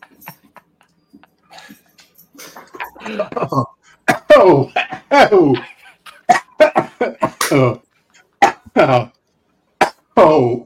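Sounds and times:
laughter: 0.0s - 7.8s
speech: 3.1s - 3.7s, 4.5s - 5.7s, 7.0s - 7.8s, 8.8s - 9.2s, 10.3s - 10.6s
person coughing harshly after a big smoking hit: 3.1s - 5.3s, 6.2s - 7.8s, 8.4s - 9.1s, 9.8s - 10.6s.

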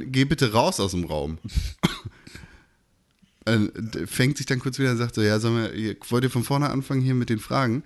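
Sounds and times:
speech: 0.0s - 2.0s, 3.4s - 7.8s
person giving a deliberate pointed cough: 1.5s - 2.4s.

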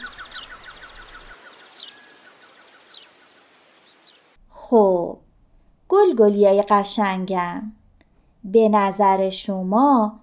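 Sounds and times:
small bird chirping: 0.0s - 4.4s
wind rustling leaves: 0.0s - 4.4s
speech: 4.7s - 5.2s, 6.0s - 7.8s, 8.4s - 10.2s.

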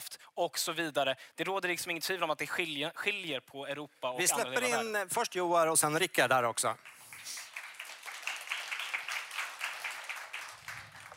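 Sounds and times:
speech: 0.4s - 7.4s
debate audience applause: 6.8s - 11.1s.

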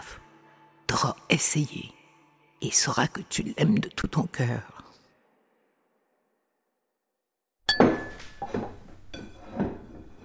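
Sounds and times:
speech: 1.0s - 2.0s, 2.6s - 4.8s
dishes and cutlery clinking and scraping at the supper table: 7.7s - 10.2s.

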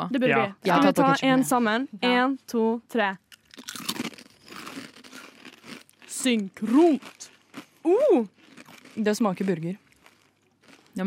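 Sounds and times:
speech: 0.0s - 3.2s, 6.2s - 8.4s, 9.0s - 9.8s
chewing potato chips: 3.3s - 11.0s
crunching flavoured potato chips: 3.3s - 11.0s.

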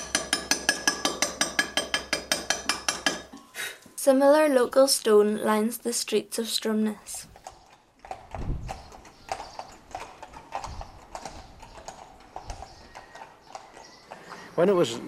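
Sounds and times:
horse hooves clip-clopping on a cobbled street: 0.0s - 3.3s, 7.0s - 15.0s
speech: 4.0s - 7.3s, 14.6s - 15.0s.

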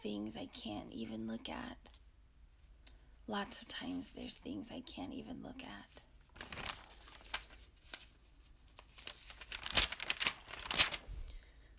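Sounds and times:
speech: 0.0s - 2.0s, 3.3s - 6.7s
paper pages rustling and crinkling as they are handled and turned: 6.2s - 11.4s.

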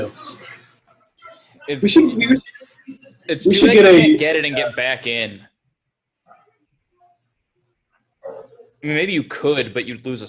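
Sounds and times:
speech: 0.0s - 0.5s, 1.7s - 5.5s, 8.8s - 10.2s
dog yelps: 8.2s - 8.7s
dog barking: 8.2s - 8.8s.

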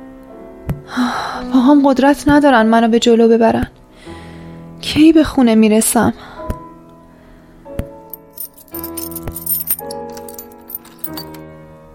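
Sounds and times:
speech: 0.9s - 3.8s, 4.8s - 6.3s
keys jangling and rattling at a lock: 8.1s - 11.4s
sharp metallic clicks and knocks at a lock: 8.1s - 11.4s.

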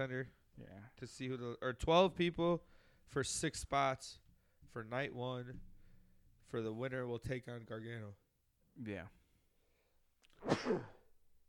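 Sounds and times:
speech: 0.0s - 5.7s, 6.5s - 8.2s, 8.8s - 9.2s, 10.4s - 11.0s
person sneezing: 10.3s - 11.1s.

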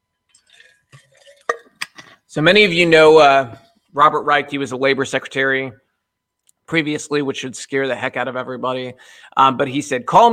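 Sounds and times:
slurping and gulping a sip of water: 0.3s - 2.2s
speech: 2.3s - 5.8s, 6.7s - 10.3s.

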